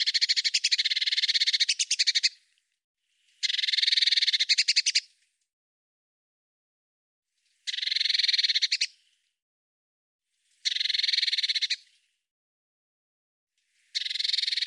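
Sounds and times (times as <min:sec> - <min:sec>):
Eurasian blue tit giving harsh buzzy churrs: 0:00.0 - 0:02.4, 0:03.4 - 0:05.0, 0:07.7 - 0:08.9, 0:10.7 - 0:11.8, 0:14.0 - 0:14.6.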